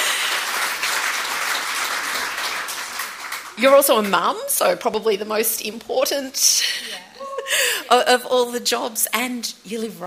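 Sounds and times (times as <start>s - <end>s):
crowd applauding: 0.0s - 4.2s
speech: 3.6s - 10.0s.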